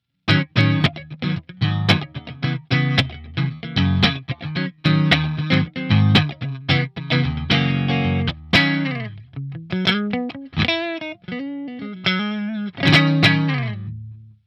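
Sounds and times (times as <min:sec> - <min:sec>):
clean electric guitar through a Helix multi-effects unit: 0:00.2 - 0:14.4.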